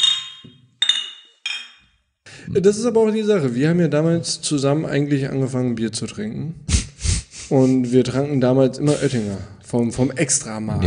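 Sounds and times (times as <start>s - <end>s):
glasses clinking in a toast: 0.0s - 1.9s
speech: 2.5s - 6.7s, 7.5s - 10.8s.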